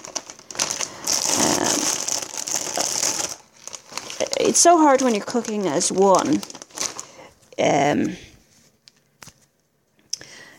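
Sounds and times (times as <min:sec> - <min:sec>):
plastic zipper bag crinkling while being filled with leftover vegetables: 0:00.0 - 0:07.7
speech: 0:04.4 - 0:06.6, 0:07.6 - 0:08.2.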